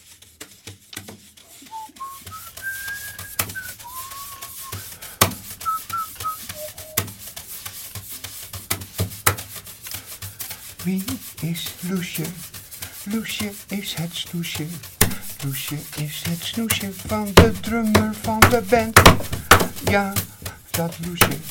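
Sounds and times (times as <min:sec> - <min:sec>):
steady scratchy rubbing: 0:00.0 - 0:21.4
person whistling a short wandering melody: 0:01.6 - 0:07.1
sharp tapping hits in irregular rhythm: 0:02.2 - 0:07.1, 0:13.4 - 0:21.4
speech: 0:10.8 - 0:21.4.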